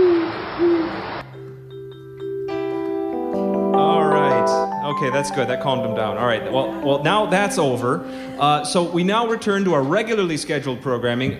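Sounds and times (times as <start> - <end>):
owls hooting: 0.0 - 1.2
hissy noisy background: 0.0 - 11.3
soft instrumental music: 0.0 - 11.3
speech: 5.0 - 11.3.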